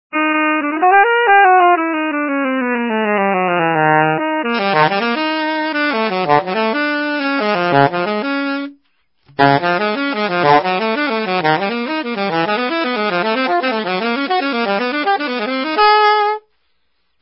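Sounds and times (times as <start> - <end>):
alto arpeggio: 0.2 - 8.7, 9.3 - 16.4.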